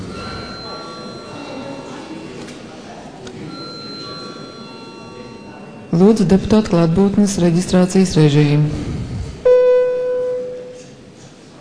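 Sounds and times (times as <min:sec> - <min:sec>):
parliament chamber electric bell ringing: 0:00.0 - 0:02.4, 0:03.4 - 0:07.0, 0:09.5 - 0:10.9
murmur of voices in a large hall: 0:00.0 - 0:11.5
speech: 0:06.0 - 0:09.0.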